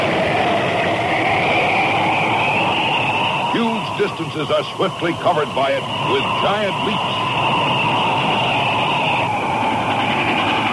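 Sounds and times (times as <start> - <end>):
hissing whine: 0.0 - 10.7
train rumbling past: 0.0 - 10.7
speech: 4.1 - 7.6.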